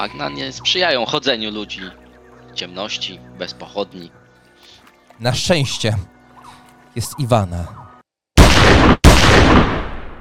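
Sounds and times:
speech: 0.0s - 2.0s, 2.6s - 6.2s, 7.0s - 7.8s
gunshots: 8.4s - 10.1s.

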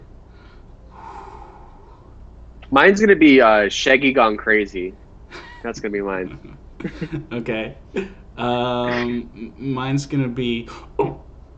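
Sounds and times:
faint low hum: 0.0s - 11.5s
speech: 2.7s - 5.0s, 5.6s - 11.2s
laughter: 5.3s - 9.7s, 10.5s - 11.1s
person imitating a buzzer in a game: 8.7s - 9.5s.

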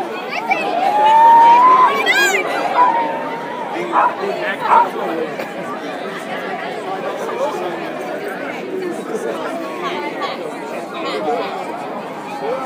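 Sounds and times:
New Year's Eve crowd babble outdoors in San Francisco: 0.0s - 12.6s
people shouting: 0.7s - 5.1s.

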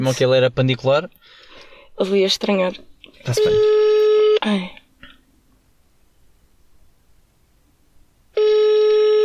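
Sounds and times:
speech: 0.0s - 3.8s, 4.4s - 4.8s
telephone ringback tone on an outgoing call: 3.3s - 4.5s, 8.4s - 9.2s.

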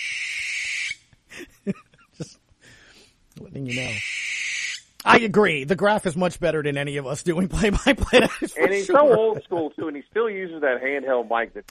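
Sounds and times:
owl hooting: 0.0s - 1.0s, 3.6s - 4.9s
laughter: 1.3s - 2.4s, 7.4s - 10.1s
speech: 1.6s - 1.8s, 3.6s - 4.1s, 5.0s - 11.6s.

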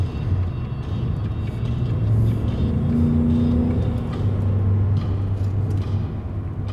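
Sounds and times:
road rumble and engine drone of a car cruising on a highway: 0.0s - 6.7s
semi-truck engine hum: 0.0s - 6.7s.

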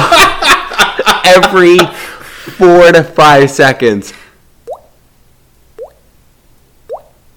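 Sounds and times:
laughter: 0.0s - 2.8s
speech: 1.3s - 4.2s
water dripping into a bucket in a movie theater: 4.6s - 4.9s, 5.8s - 6.0s, 6.9s - 7.2s.

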